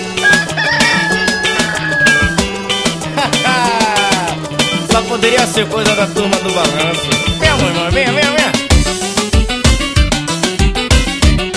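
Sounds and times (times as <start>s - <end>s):
loud busy music track with steady percussion: 0.1s - 11.5s
rooster crowing: 0.2s - 2.9s
fowl-like calls: 0.2s - 3.2s
laughter: 0.7s - 4.6s
speech: 5.2s - 8.4s.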